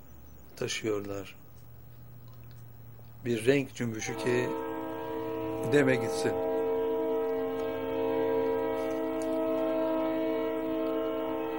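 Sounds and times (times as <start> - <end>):
faint rail noise: 0.0 - 11.5
speech: 0.6 - 1.4, 3.2 - 4.6, 5.6 - 6.5
passing train horn blast: 3.4 - 11.5.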